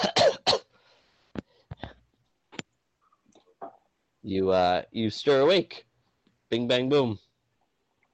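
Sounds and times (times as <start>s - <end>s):
player coughing on purpose during a tabletop game session: 0.0s - 0.7s
speech: 4.2s - 5.9s, 6.5s - 7.2s.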